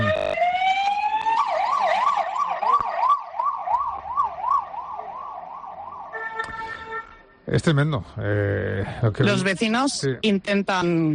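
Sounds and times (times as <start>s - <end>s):
emergency vehicle sirens wailing and yelping: 0.0s - 7.2s
speech: 7.5s - 11.1s.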